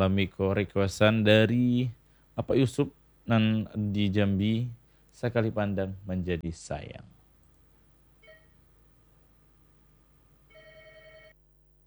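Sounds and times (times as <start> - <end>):
speech: 0.0 - 7.2
low steady hum: 0.0 - 11.8
telephone ringing with an electronic warbling tone: 8.2 - 11.4.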